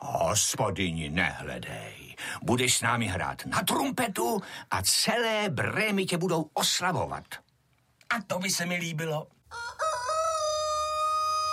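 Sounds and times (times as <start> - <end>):
speech: 0.3 - 7.4, 8.2 - 9.4
rooster crowing: 9.5 - 11.5.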